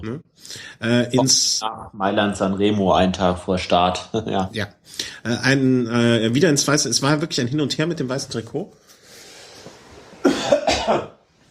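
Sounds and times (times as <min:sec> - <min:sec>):
speech: 0:00.0 - 0:08.8
person coughing: 0:10.2 - 0:11.2.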